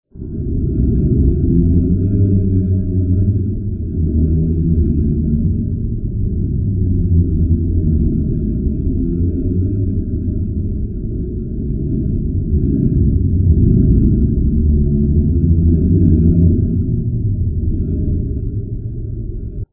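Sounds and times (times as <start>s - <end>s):
Arenal volcanic tremor sped up and reversed: 0.1s - 19.7s.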